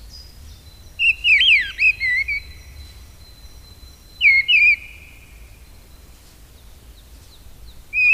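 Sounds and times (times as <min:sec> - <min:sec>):
mistle thrush giving a warbling whistled phrase: 0:01.0 - 0:05.2, 0:08.0 - 0:08.1.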